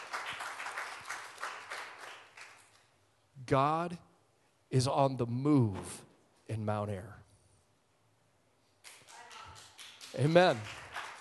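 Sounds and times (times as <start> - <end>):
crowd applauding: 0.0 - 2.7, 8.9 - 11.2
speech: 3.5 - 4.1, 4.7 - 7.2, 10.2 - 10.8.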